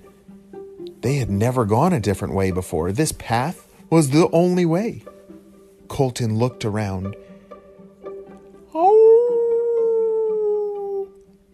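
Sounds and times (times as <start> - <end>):
speech: 1.0 - 5.1, 6.0 - 7.3
wolf howling: 8.7 - 11.2.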